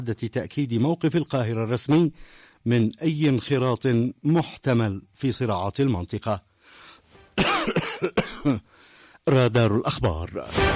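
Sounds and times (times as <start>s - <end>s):
speech: 0.0s - 6.8s, 7.4s - 10.7s
man coughing in harsh quick bursts: 7.4s - 8.7s.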